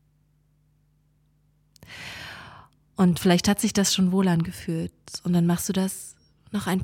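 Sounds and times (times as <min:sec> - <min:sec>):
person inhaling deeply through the nose and exhaling through the mouth: 0:01.8 - 0:02.7
speech: 0:03.0 - 0:06.8.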